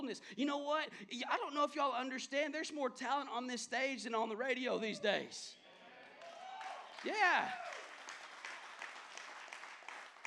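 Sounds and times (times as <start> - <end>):
speech: 0.0 - 5.6, 7.0 - 7.8
crowd clapping for a worship team: 6.0 - 10.2.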